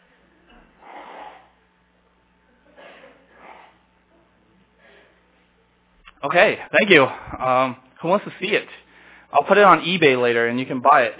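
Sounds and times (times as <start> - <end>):
person blowing their nose: 0.8 - 1.6, 2.8 - 3.8
speech: 6.2 - 11.1.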